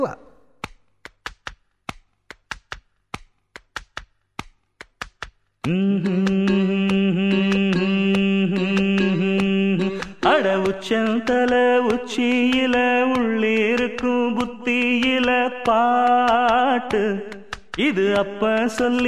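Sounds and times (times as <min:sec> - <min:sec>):
speech: 0:00.0 - 0:00.2, 0:05.6 - 0:06.3, 0:10.5 - 0:19.0
rhythmic tapping on a person's head: 0:00.5 - 0:19.0.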